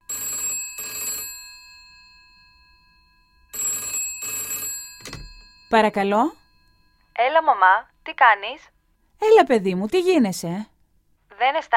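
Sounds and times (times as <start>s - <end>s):
old-style telephone bell ringing: 0.0s - 7.4s
speech: 5.7s - 6.4s, 7.2s - 10.7s, 11.4s - 11.7s.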